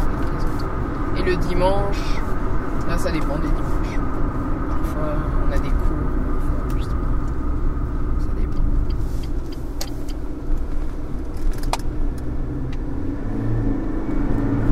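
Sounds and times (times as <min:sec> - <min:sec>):
car engine running with a heavy low rumble: 0:00.0 - 0:14.7
speech: 0:01.3 - 0:02.3, 0:02.9 - 0:04.0
sharp clicks and rattles: 0:08.5 - 0:11.9.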